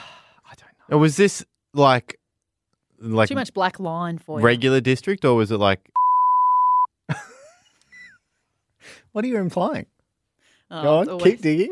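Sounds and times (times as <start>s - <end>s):
speech: 0.9s - 2.2s, 3.0s - 6.0s, 7.1s - 7.3s, 8.8s - 9.9s, 10.7s - 11.7s
censor beep: 6.0s - 6.9s.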